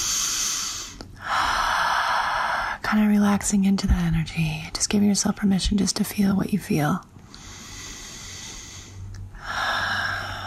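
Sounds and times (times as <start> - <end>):
deep breath during a guided relaxation exercise: 0.0 - 2.8, 7.3 - 10.4
speech: 2.9 - 7.1.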